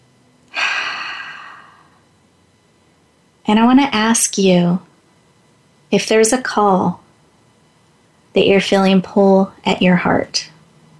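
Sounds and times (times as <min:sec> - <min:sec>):
deep inhaled breath during a guided reflection exercise: 0:00.5 - 0:02.0
speech: 0:03.5 - 0:04.9, 0:05.9 - 0:07.0, 0:08.4 - 0:10.5.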